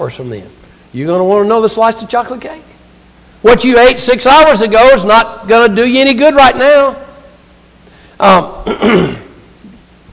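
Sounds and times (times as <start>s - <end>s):
speech: 0.0s - 2.7s, 3.4s - 7.0s, 8.2s - 9.2s
person clearing throat: 8.6s - 9.8s.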